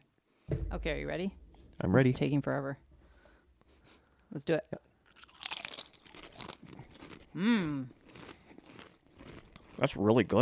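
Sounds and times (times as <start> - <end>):
speech: 0.7 - 2.8, 4.3 - 4.9, 7.4 - 8.0, 9.8 - 10.4
crunching and chewing bean chips: 5.0 - 10.4.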